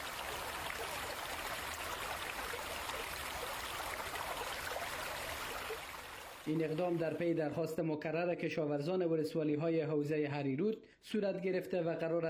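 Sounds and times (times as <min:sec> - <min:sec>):
water rushing from opened dam gates: 0:00.0 - 0:07.2
speech: 0:06.5 - 0:12.2.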